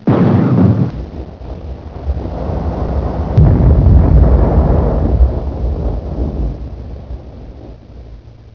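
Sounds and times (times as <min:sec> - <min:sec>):
gunshots: 0:00.0 - 0:01.0
cannon fire: 0:00.0 - 0:07.9
bomb explosions: 0:00.0 - 0:08.4.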